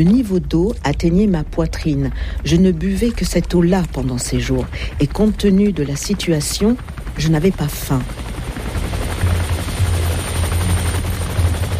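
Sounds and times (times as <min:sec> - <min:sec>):
speech: 0:00.0 - 0:08.3
helicopter rotor thumping overhead: 0:00.0 - 0:11.7.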